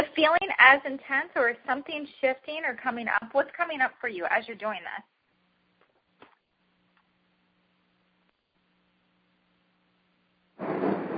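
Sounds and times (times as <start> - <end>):
faint steady hum: 0.0 - 11.1
speech: 0.2 - 5.1
thunder rumbling: 10.6 - 11.1.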